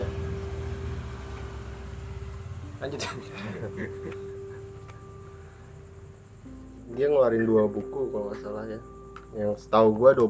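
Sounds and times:
motorcycle engine idling: 0.0 - 6.2
speech: 2.8 - 4.3, 7.0 - 10.2
laughter: 3.0 - 4.8.

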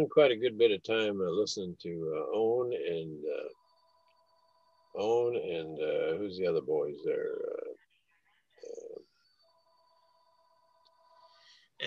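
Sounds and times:
speech: 0.0 - 3.6, 5.0 - 7.8
several house telephones ringing with a steady electronic tone: 3.0 - 7.7, 8.6 - 11.4.

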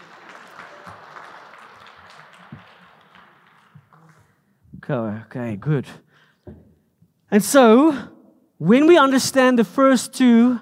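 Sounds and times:
room full of people clapping: 0.0 - 4.7
speech: 4.9 - 6.0, 7.3 - 10.6.

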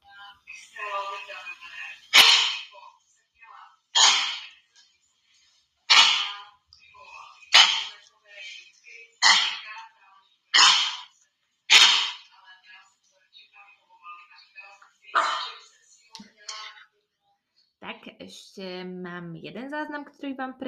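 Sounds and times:
dog coughing with raspy wheezing: 2.1 - 2.7, 4.0 - 4.6, 5.9 - 6.4, 7.5 - 8.0, 9.2 - 9.8, 10.6 - 11.1, 11.7 - 12.3, 15.2 - 15.6
speech: 18.3 - 20.6.

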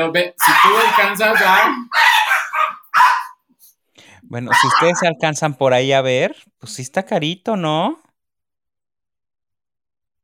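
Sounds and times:
speech: 0.0 - 2.0, 4.3 - 8.0
dogs barking: 0.4 - 3.5, 4.5 - 5.2.

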